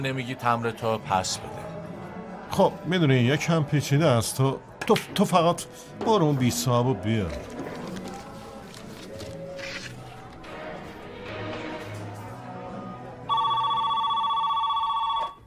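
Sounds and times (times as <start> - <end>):
speech: 0.0 - 1.7, 2.6 - 7.6
telephone ringing with a trilling electronic ring: 13.3 - 15.4.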